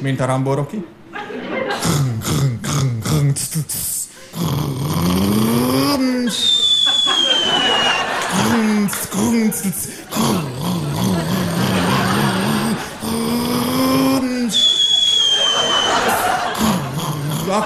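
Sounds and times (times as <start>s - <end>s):
speech: 0.0s - 1.0s, 3.4s - 7.2s, 8.4s - 10.4s
laughter: 1.1s - 2.2s, 5.8s - 17.6s
voice imitating a heavy turbo truck setting off and accelerating: 1.8s - 6.5s, 8.1s - 14.6s, 16.4s - 17.6s.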